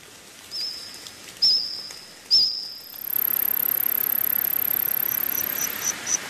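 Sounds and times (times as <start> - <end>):
insects chirping in shrill bursts: 0.6 - 6.2
steady high-pitched insect trill: 2.4 - 6.2
quick squawking pulses: 2.9 - 6.2.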